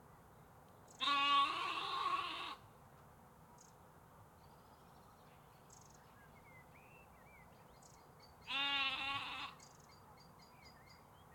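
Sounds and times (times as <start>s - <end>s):
faint background hiss: 0.0s - 11.3s
sheep bleating in the UK: 1.0s - 2.6s, 8.5s - 9.6s.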